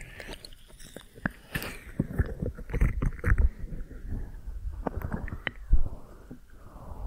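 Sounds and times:
sharp clicks and scratches: 0:00.0 - 0:04.2
rubbing and crackling of ear massage: 0:00.0 - 0:06.4.

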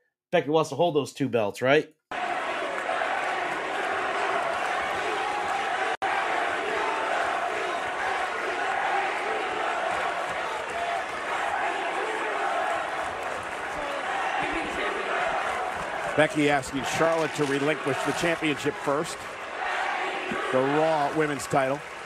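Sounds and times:
speech: 0:00.3 - 0:02.0, 0:16.2 - 0:19.4, 0:20.5 - 0:21.9
large arena crowd roaring: 0:02.1 - 0:22.0.

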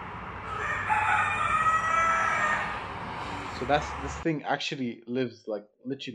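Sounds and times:
rooster crowing: 0:00.4 - 0:03.9
speech: 0:03.6 - 0:06.1.

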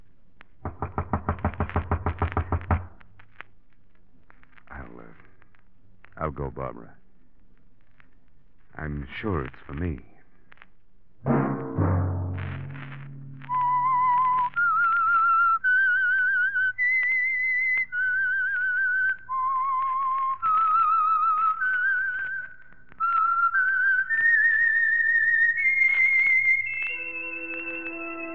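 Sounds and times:
faint low tones: 0:00.0 - 0:24.1
speech: 0:06.2 - 0:07.0, 0:08.8 - 0:10.1
whistled melody: 0:13.5 - 0:28.3.

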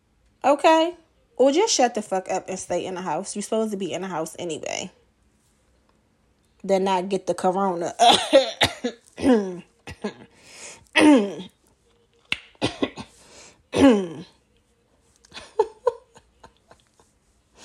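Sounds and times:
speech: 0:00.4 - 0:05.0, 0:06.6 - 0:10.3, 0:11.0 - 0:11.5, 0:13.8 - 0:14.3
loud raspy coughing: 0:08.0 - 0:11.6, 0:12.4 - 0:14.4.

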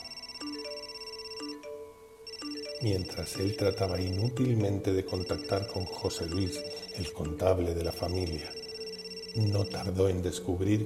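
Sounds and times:
electronic telephone ringing: 0:00.0 - 0:10.0
speech: 0:02.8 - 0:08.6, 0:09.4 - 0:10.8.

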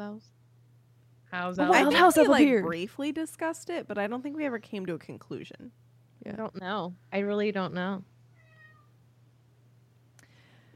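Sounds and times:
low steady hum: 0:00.0 - 0:10.7
speech: 0:01.3 - 0:08.1
cat meowing: 0:08.4 - 0:08.9.

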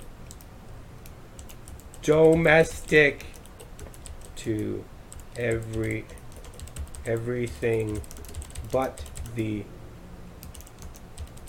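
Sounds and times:
steady hiss: 0:00.0 - 0:11.4
typing on a computer keyboard: 0:01.4 - 0:09.4, 0:10.4 - 0:11.4
speech: 0:02.0 - 0:03.3, 0:04.4 - 0:06.2, 0:07.1 - 0:09.7.

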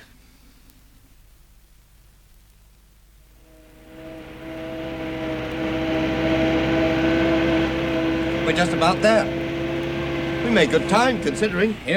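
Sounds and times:
truck engine droning while driving: 0:00.0 - 0:11.9
speech: 0:08.6 - 0:09.4, 0:10.5 - 0:11.9.

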